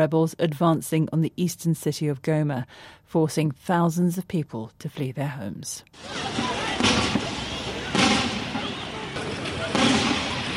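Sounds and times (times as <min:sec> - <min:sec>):
speech: 0:00.0 - 0:06.9
outdoor noise: 0:00.0 - 0:10.5
gunshots in a city: 0:06.2 - 0:10.5.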